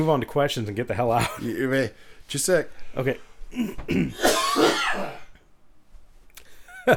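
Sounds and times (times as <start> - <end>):
speech: 0.0 - 5.2
person coughing: 3.5 - 5.4
person loudly clearing throat: 3.5 - 5.4.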